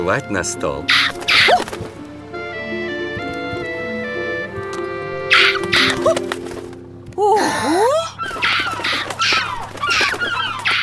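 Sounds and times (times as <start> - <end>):
speech: 0.0 - 2.0
gulls squawking around a lunch table: 0.3 - 6.8, 7.8 - 10.8.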